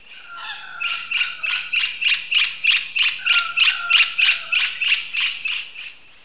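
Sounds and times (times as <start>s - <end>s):
harsh harmonic downslurred bird calls: 0.0s - 6.1s.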